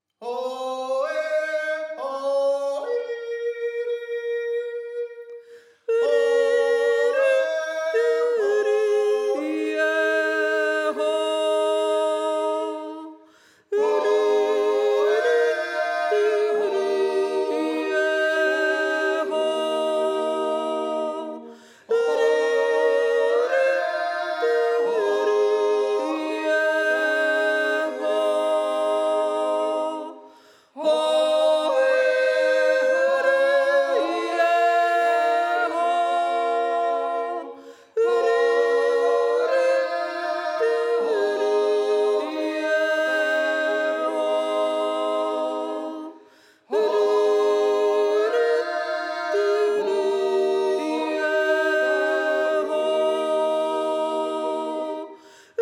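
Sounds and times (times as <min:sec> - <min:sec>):
soprano folk dance music: 0:00.0 - 0:55.6.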